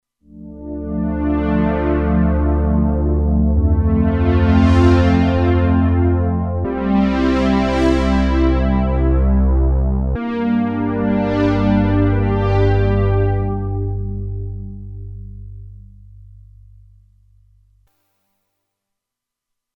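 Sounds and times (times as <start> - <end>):
Roland Alpha Juno-2 string sweep: 0.4 - 16.1.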